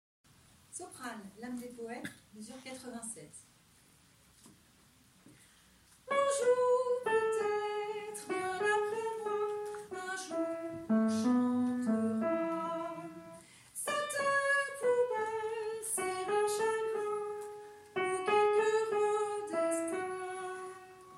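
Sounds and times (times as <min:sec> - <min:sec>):
sopranos singing: 0:06.1 - 0:21.1.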